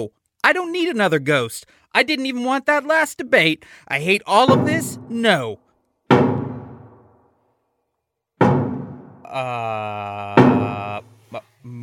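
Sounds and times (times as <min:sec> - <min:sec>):
speech: 0:00.0 - 0:06.2, 0:09.3 - 0:11.8
loud heavy knocks on a door: 0:04.5 - 0:05.2, 0:06.1 - 0:07.1, 0:08.4 - 0:09.2.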